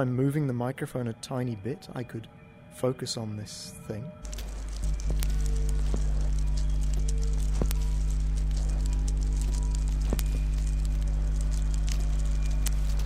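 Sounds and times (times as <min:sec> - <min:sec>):
speech: 0:00.0 - 0:04.4
low humming drone of generators and transformers: 0:04.2 - 0:13.0
sharp electrical crackles and snapping discharges: 0:04.2 - 0:13.0.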